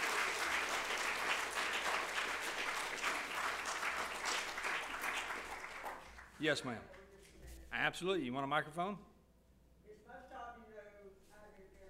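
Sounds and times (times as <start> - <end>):
audience applause: 0.0 - 6.4
speech: 6.4 - 7.0, 7.7 - 9.1.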